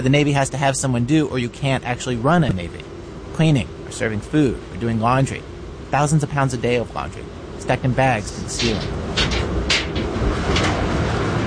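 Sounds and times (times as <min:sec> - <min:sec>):
speech: 0:00.0 - 0:09.1
steady hum: 0:00.0 - 0:11.4
large laundry dryer door opened on a machine holding 100 pounds of Navy laundry: 0:08.6 - 0:11.2.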